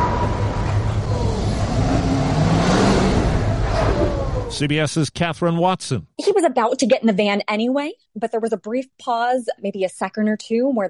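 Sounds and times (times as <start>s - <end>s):
traffic noise: 0.0s - 4.8s
car engine revving and accelerating: 0.0s - 5.8s
speech: 4.6s - 10.8s.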